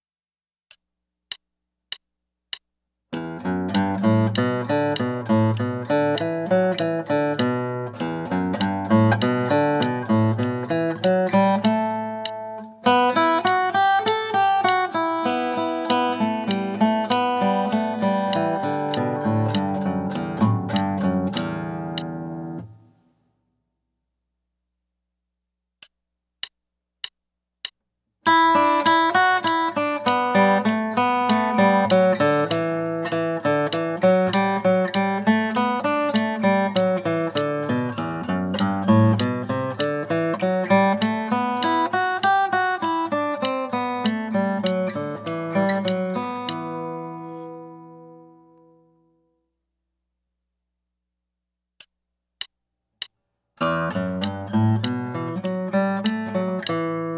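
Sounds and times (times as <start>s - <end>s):
instrument picking studies: 3.1s - 22.9s, 28.3s - 48.4s, 53.6s - 57.1s.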